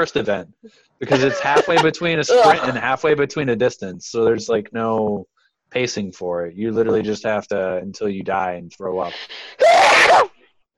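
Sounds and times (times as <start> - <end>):
laughter: 0.0 - 0.4, 1.0 - 5.2, 5.8 - 9.1
speech: 0.0 - 10.3
person sneezing: 1.0 - 2.8.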